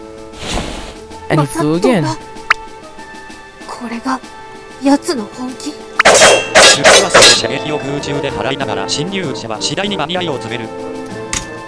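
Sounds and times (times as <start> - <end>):
speech: 1.3 - 2.3, 3.8 - 10.9
arrows being deflected with sharp thwacking impacts: 6.0 - 7.4.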